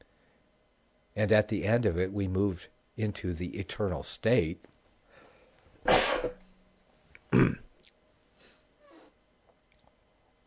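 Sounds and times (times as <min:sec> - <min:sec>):
speech: 0:01.2 - 0:04.7
person clearing throat: 0:05.9 - 0:06.4, 0:07.3 - 0:07.8
person coughing: 0:05.9 - 0:06.4, 0:07.3 - 0:07.7.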